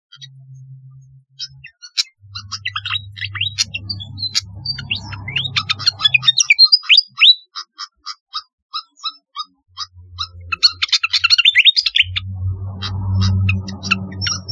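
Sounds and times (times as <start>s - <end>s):
low hum: 0.1s - 6.5s, 9.8s - 14.5s
flycatcher singing: 1.4s - 7.4s, 9.8s - 14.5s.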